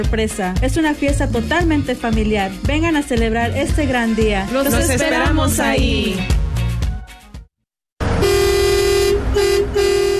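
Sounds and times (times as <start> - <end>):
speech: 0.0 - 6.4
truck horn honking: 8.0 - 10.1.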